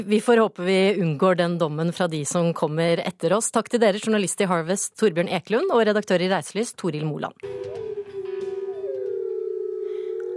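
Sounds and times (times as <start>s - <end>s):
speech: 0.0s - 7.9s
wolf howling: 7.4s - 10.3s.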